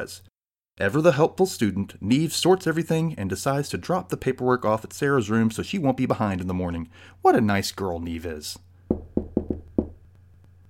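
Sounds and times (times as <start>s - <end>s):
speech: 0.0s - 8.7s
solid knocks on a wooden door: 8.9s - 10.0s.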